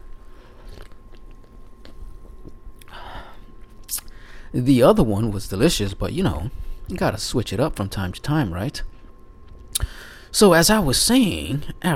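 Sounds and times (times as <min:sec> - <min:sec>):
person sipping a drink: 0:00.5 - 0:02.0, 0:03.6 - 0:04.2
speech: 0:04.5 - 0:08.9, 0:09.8 - 0:11.9.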